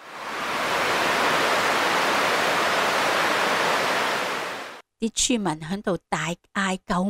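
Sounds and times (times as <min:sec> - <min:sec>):
rushing floodwater: 0:00.0 - 0:04.8
speech: 0:05.0 - 0:07.0.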